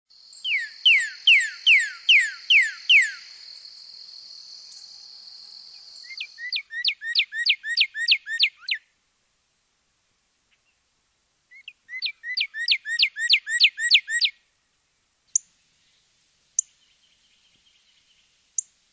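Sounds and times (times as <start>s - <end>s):
Northern Cardinal singing: 0.1s - 8.9s, 11.5s - 14.4s, 15.3s - 18.7s.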